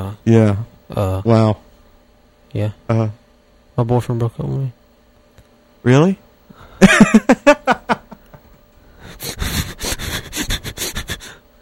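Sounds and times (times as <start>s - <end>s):
speech: 0.1s - 1.6s, 2.5s - 3.2s, 3.8s - 4.8s, 5.8s - 6.2s, 6.8s - 7.6s
laughter: 6.8s - 8.6s
man sniffling loudly: 9.0s - 11.5s.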